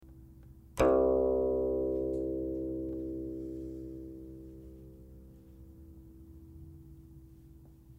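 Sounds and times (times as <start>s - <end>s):
guqin: 0.8s - 5.3s.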